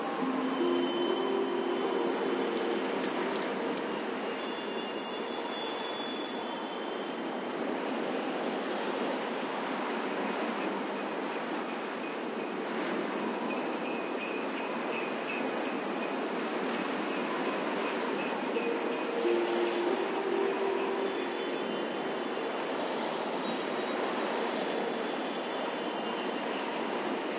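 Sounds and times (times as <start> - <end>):
Christmas ambience: 0.2 - 27.3.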